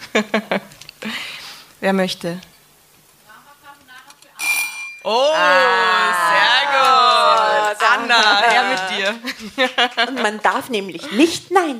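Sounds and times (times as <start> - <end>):
speech: 0.2 - 0.7, 1.8 - 2.5, 5.0 - 11.7
bell ringing sharply in a bright buzzy burst: 4.4 - 5.2
laughter: 5.1 - 11.3.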